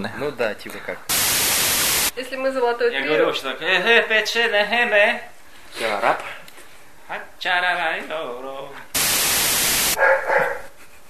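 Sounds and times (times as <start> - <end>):
speech: 0.0 - 1.2, 2.2 - 6.3, 7.1 - 8.9
static hiss: 1.1 - 2.1, 8.9 - 10.0
dog barking: 10.0 - 10.8.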